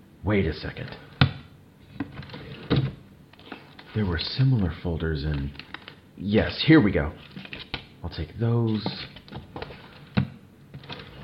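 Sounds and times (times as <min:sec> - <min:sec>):
speech: 0:00.2 - 0:01.1, 0:04.0 - 0:07.3, 0:08.0 - 0:09.1
drawer sliding open with a wooden thunk: 0:01.9 - 0:03.7, 0:08.8 - 0:11.2.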